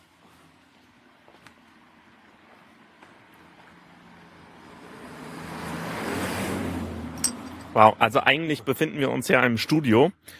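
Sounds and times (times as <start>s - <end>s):
car passing by with engine and tire noise: 3.2s - 7.5s
speech: 7.8s - 10.3s.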